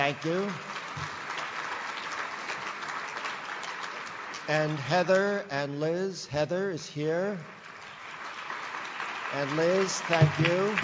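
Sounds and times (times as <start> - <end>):
audience applause: 0.0 - 5.2, 7.6 - 10.8
speech: 0.1 - 1.2, 4.5 - 7.6, 9.3 - 10.8.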